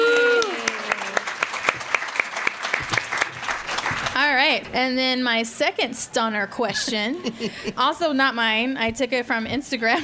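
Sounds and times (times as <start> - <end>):
person cheering: 0.0 - 1.2
crowd applause: 0.0 - 4.3
speech: 4.5 - 10.0.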